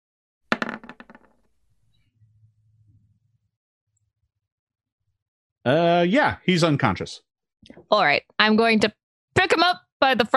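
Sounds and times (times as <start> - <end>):
couple of dice clattering onto a hard surface: 0.5 - 1.4
speech: 5.6 - 10.3.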